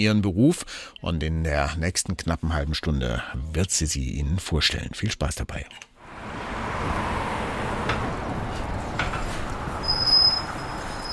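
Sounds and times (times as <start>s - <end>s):
speech: 0.0s - 5.9s
bus rumbling up to a stop: 6.0s - 11.1s
steady street noise: 6.0s - 11.1s
high bus brake squeal: 8.4s - 11.1s.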